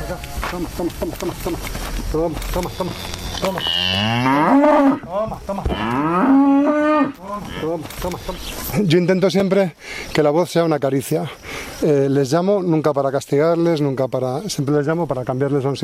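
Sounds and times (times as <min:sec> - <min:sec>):
cows mooing on a farm: 0:00.0 - 0:08.5
speech: 0:00.1 - 0:15.8.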